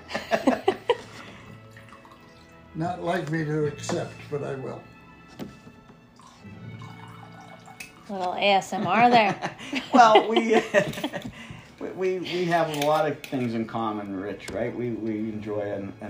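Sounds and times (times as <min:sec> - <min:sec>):
laughter: 0:00.0 - 0:01.2, 0:08.7 - 0:12.7
faint lingering trickles of liquid: 0:01.3 - 0:03.2, 0:06.1 - 0:08.8
drink being poured with splashing liquid: 0:01.5 - 0:04.2, 0:05.9 - 0:08.3
speech: 0:02.8 - 0:04.9, 0:08.1 - 0:16.0
glass clinking: 0:06.2 - 0:08.1.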